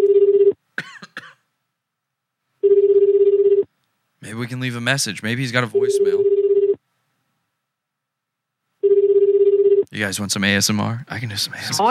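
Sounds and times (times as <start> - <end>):
ringback tone of an outgoing telephone call: 0.0 - 0.5, 2.6 - 3.6, 5.8 - 6.8, 8.8 - 9.8
person coughing: 0.8 - 1.4
throat clearing: 0.8 - 1.4
speech: 4.4 - 6.3, 10.0 - 11.8.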